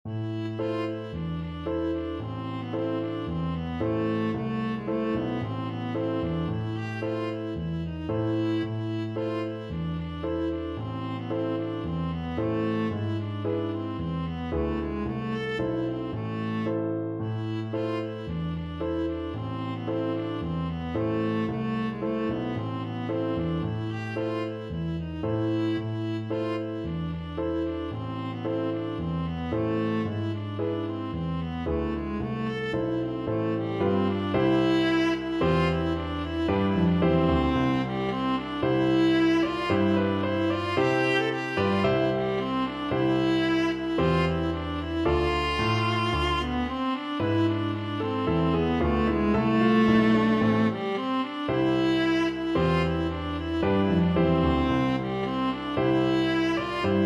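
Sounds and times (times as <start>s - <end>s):
viola playing a syrtos dance tune: 0.0s - 57.0s.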